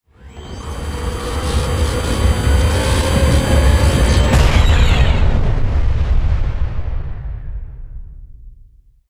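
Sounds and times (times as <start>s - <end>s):
hologram explosion: 1.5s - 8.5s.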